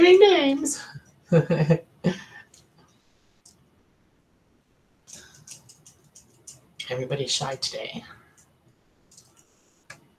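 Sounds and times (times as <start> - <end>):
speech: 0.0 - 2.2, 6.9 - 8.2
soft keyboard clicks from typing: 5.1 - 6.7, 9.1 - 10.0.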